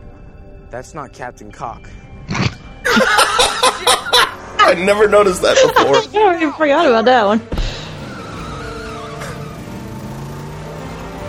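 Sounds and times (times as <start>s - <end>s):
speech: 0.7s - 2.4s, 3.8s - 7.6s
laughter: 2.8s - 6.5s
car engine accelerating slowly: 7.4s - 11.2s
brief sweeping high squeal: 7.9s - 10.2s.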